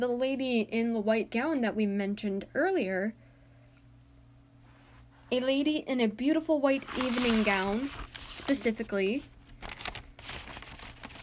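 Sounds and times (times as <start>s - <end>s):
speech: 0.0s - 3.2s, 5.3s - 9.3s
sheet of paper rustling and crinkling: 6.7s - 11.2s.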